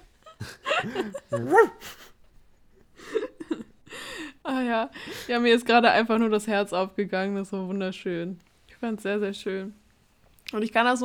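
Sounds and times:
laughter: 0:00.3 - 0:02.1
speech: 0:00.8 - 0:02.0, 0:04.5 - 0:09.8, 0:10.5 - 0:11.0
person imitating a barking dog with yappy woofs: 0:01.4 - 0:01.8.

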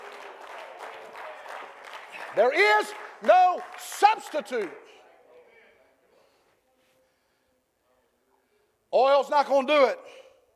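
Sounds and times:
audience clapping hands: 0:00.0 - 0:04.8
speech: 0:02.3 - 0:04.9, 0:09.0 - 0:10.2.

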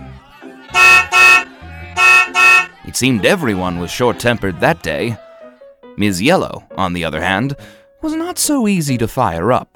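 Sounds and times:
car horns honking: 0:00.8 - 0:02.8
speech: 0:03.0 - 0:05.2, 0:06.0 - 0:09.7.

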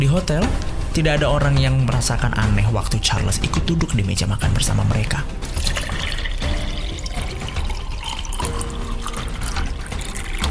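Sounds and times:
speech: 0:00.1 - 0:05.4
water being poured into glasses: 0:05.4 - 0:10.4.

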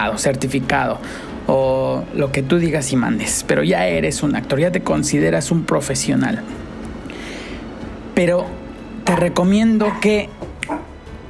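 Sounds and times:
speech: 0:00.0 - 0:06.7, 0:08.2 - 0:10.8
dog giving a short sharp yip or bark: 0:09.8 - 0:11.0.

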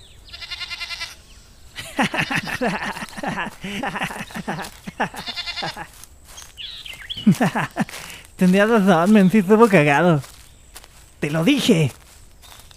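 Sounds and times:
goat bleating: 0:00.3 - 0:01.2, 0:01.9 - 0:06.0
laughter: 0:01.8 - 0:06.0, 0:07.2 - 0:08.8
speech: 0:02.0 - 0:06.0, 0:07.2 - 0:10.3, 0:11.2 - 0:12.0.

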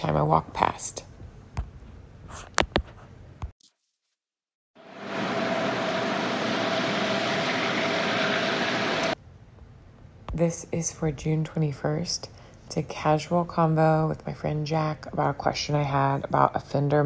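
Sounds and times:
speech: 0:00.0 - 0:01.1, 0:10.4 - 0:17.0
air rushing from a giant lint trap exhaust grate: 0:04.8 - 0:09.2.

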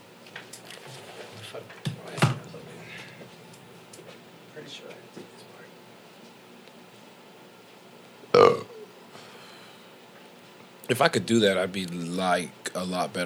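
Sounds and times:
shuffling: 0:00.0 - 0:07.9
quiet murmuring: 0:00.4 - 0:09.1
burps: 0:08.3 - 0:08.9
speech: 0:10.9 - 0:13.2.

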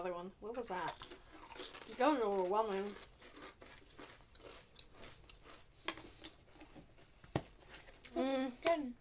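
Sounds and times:
speech: 0:00.0 - 0:03.1, 0:08.1 - 0:08.9
chewing crunchy crisp snacks: 0:00.9 - 0:06.7.

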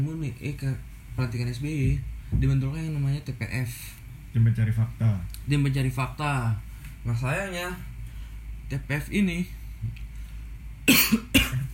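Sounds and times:
speech: 0:00.0 - 0:07.9, 0:08.7 - 0:10.0, 0:10.9 - 0:11.4
quiet hum: 0:00.0 - 0:11.7
person coughing: 0:10.9 - 0:11.7.

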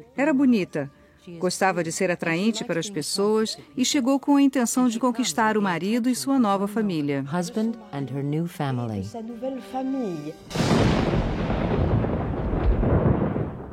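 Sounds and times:
speech: 0:00.0 - 0:11.2
thunder crack and rumble from a strong storm: 0:10.5 - 0:13.7.

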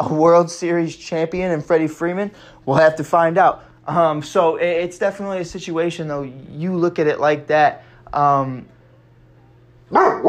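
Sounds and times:
speech: 0:00.0 - 0:08.7, 0:09.9 - 0:10.2
low steady hum: 0:01.3 - 0:10.2
dog barking at someone in the yard: 0:09.9 - 0:10.2.

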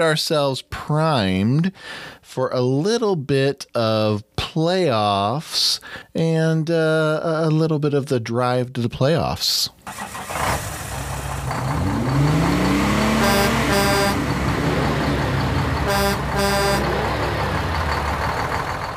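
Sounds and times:
speech: 0:00.0 - 0:10.7
several vehicle engines revving and roaring: 0:09.9 - 0:18.9
sharp horn-like blasts: 0:13.0 - 0:14.4, 0:15.6 - 0:17.6.

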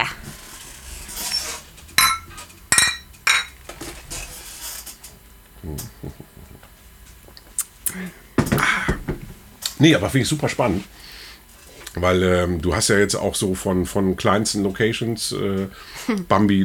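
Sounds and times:
glasses clinking in a toast: 0:01.3 - 0:03.6
laughter: 0:05.6 - 0:06.7
speech: 0:05.7 - 0:06.3, 0:09.8 - 0:11.0, 0:12.0 - 0:16.6.

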